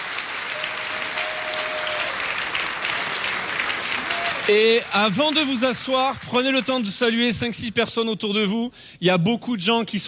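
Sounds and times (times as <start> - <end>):
crowd applauding in a room: 0.0 - 7.1
speech: 4.5 - 10.0.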